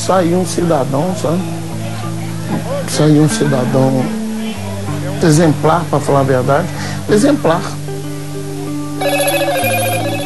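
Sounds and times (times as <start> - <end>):
speech: 0.1 - 1.8, 2.5 - 4.2, 5.2 - 7.8
steady low tonal background: 9.0 - 10.2
telephone ringing with a warbling electronic trill: 9.0 - 10.2.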